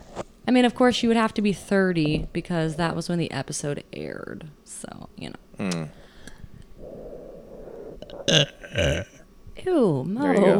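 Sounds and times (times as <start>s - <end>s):
speech: 0.5s - 6.0s, 8.3s - 10.5s
loud burps with a low croaky rumble: 5.6s - 6.0s, 6.8s - 9.3s.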